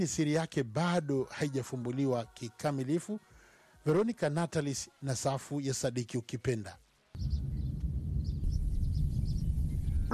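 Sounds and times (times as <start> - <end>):
speech: 0.0 - 7.4
faint high bird chirps: 7.2 - 10.1
wind in natural surroundings at Engaruka: 7.2 - 10.1.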